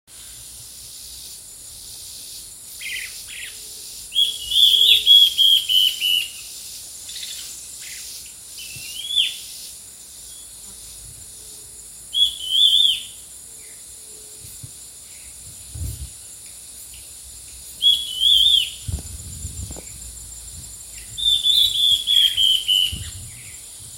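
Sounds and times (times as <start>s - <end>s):
Myrmorchilus strigilatus bird call: 2.9s - 6.4s, 12.2s - 13.2s, 17.8s - 18.8s, 21.0s - 23.2s.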